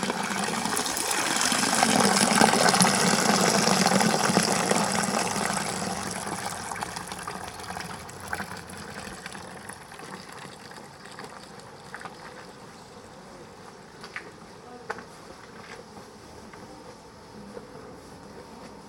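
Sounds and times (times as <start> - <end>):
water from a town square fountain rushing and splashing: 0.0 - 12.6.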